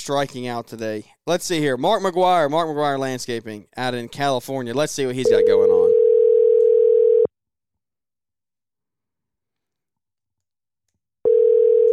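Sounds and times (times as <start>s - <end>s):
speech: 0.0s - 5.8s
telephone ringback tone on an outgoing call to a landscaping business in California: 5.3s - 7.3s, 11.3s - 11.9s.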